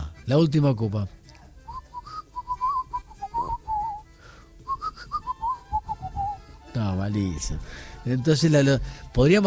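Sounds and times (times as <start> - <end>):
speech: 0.3 - 1.2, 7.1 - 9.4
person whistling a tune: 1.6 - 6.5.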